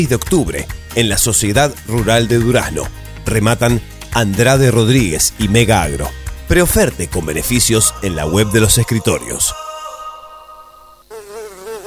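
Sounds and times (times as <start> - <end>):
speech: 0.0 - 9.6
flies buzzing: 7.7 - 11.8.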